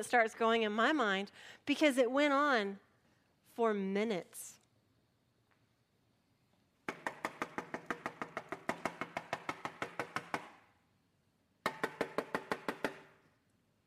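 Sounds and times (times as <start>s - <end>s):
speech: 0.0s - 2.8s, 3.6s - 4.6s
rapid insistent knocking on a door: 6.9s - 10.5s, 11.6s - 13.0s.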